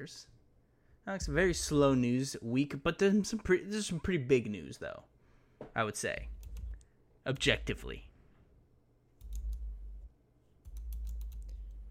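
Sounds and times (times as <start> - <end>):
speech: 0.0 - 0.3, 1.0 - 6.4, 7.2 - 8.1
rapid clicky typing on a Razer mechanical keyboard: 6.4 - 6.8, 9.2 - 9.7, 10.6 - 11.8.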